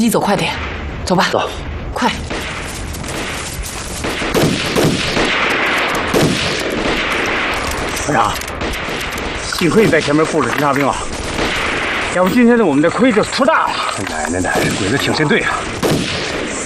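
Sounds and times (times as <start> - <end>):
speech: 0.0 - 2.5, 8.1 - 8.5, 9.6 - 11.1, 12.2 - 15.8
sustained gunfire from a distant hillside: 2.2 - 12.2, 15.5 - 16.6.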